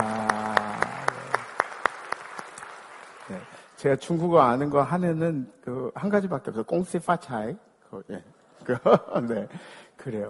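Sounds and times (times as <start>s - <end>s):
church congregation applauding: 0.0s - 3.8s
speech: 3.8s - 10.2s.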